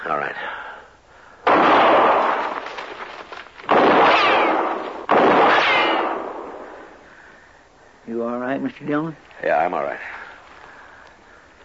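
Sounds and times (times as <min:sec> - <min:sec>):
gunshots in a shootout in brushy country: 0:01.4 - 0:02.9, 0:03.6 - 0:07.0
speech: 0:08.7 - 0:10.2.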